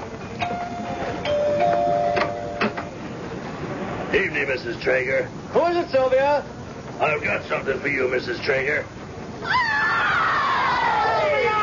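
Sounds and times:
faint hiss of room noise: 0.0s - 11.6s
doorbell with sustained electronic chime tones: 0.4s - 2.7s
speech: 4.1s - 9.8s.

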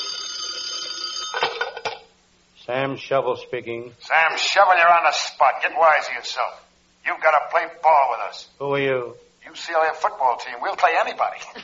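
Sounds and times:
old-fashioned telephone bell ringing: 0.0s - 2.1s
speech: 2.7s - 11.6s.

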